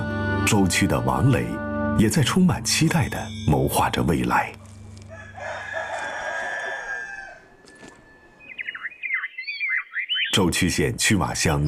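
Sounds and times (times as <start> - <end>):
speech: 0.5 - 4.6, 10.4 - 11.6
rooster crowing in a village: 5.0 - 7.8
chickens chirping and clucking under walnut trees in a village: 6.0 - 10.4.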